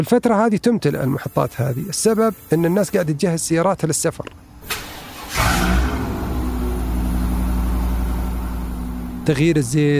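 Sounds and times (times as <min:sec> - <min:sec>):
speech: 0:00.0 - 0:05.9, 0:09.3 - 0:09.9
car engine revving at a car service station: 0:04.7 - 0:09.9.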